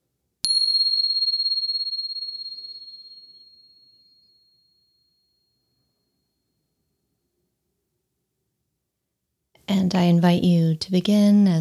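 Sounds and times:
bell ringing: 0.5s - 3.5s
speech: 9.8s - 11.5s.

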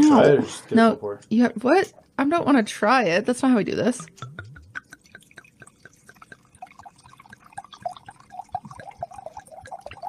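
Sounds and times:
speech: 0.1s - 4.5s
wine poured into a glass: 4.0s - 10.0s.

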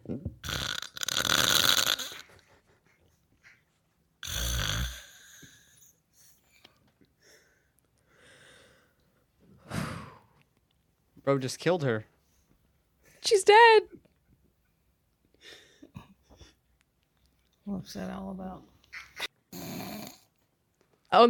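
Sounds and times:
woman snoring loudly: 0.4s - 2.2s, 4.2s - 5.7s, 19.5s - 20.3s
quiet breathy breathing: 7.2s - 10.4s, 15.4s - 16.6s
speech: 11.3s - 12.1s, 13.2s - 14.0s, 17.7s - 18.7s.

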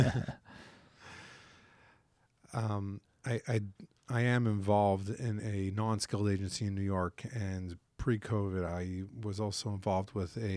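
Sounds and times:
person coughing: 0.0s - 0.4s
speech: 0.0s - 0.4s, 2.5s - 10.5s
voiced throat-clearing hum: 0.0s - 0.4s
breathy exhale: 0.4s - 2.1s.

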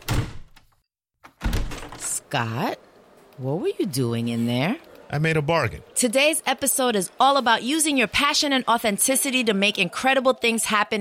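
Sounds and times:
heavy door shutting with a rattling decay: 0.0s - 2.2s
speech: 2.3s - 10.9s.

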